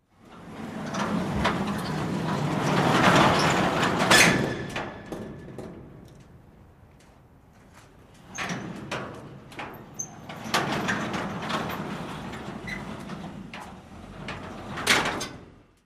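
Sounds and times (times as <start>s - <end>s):
medium metal gate opening and closing: 0.4s - 6.3s, 8.2s - 15.7s.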